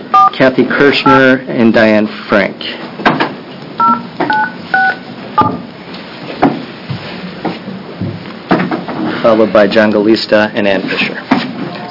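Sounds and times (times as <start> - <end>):
telephone keypad dual-tone beeps dialing a number: 0.1 - 0.3, 3.8 - 5.6
speech: 0.4 - 3.2, 9.3 - 11.3.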